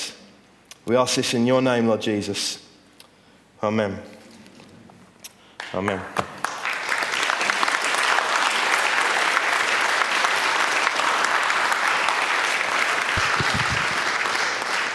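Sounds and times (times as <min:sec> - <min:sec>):
speech: 0:00.8 - 0:02.7, 0:03.6 - 0:04.2, 0:05.7 - 0:06.3
congregation applauding after a sermon: 0:05.6 - 0:14.9.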